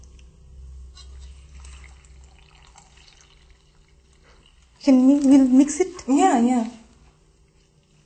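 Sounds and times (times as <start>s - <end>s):
small water drips: 0.0s - 0.4s, 1.0s - 8.0s
low hum: 0.0s - 8.0s
water pouring into a bowl of dry semolina flour: 1.0s - 6.0s
speech: 4.8s - 6.8s.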